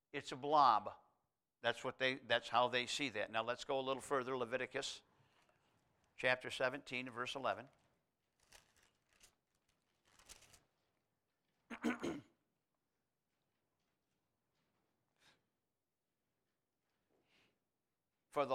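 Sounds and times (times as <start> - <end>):
speech: 0.1 - 1.0, 1.6 - 5.1, 6.2 - 7.8, 18.4 - 18.5
pages of a book rustling and flipping: 7.7 - 10.7
soft paper crinkles: 7.7 - 10.8.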